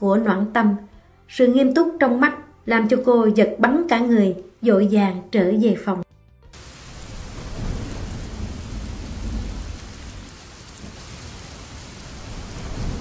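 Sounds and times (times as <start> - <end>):
speech: 0.0 - 6.0
low rolling thunder rumbles: 6.6 - 12.9
rain lashing a glass window in a thunderstorm with strong wind: 6.6 - 12.9.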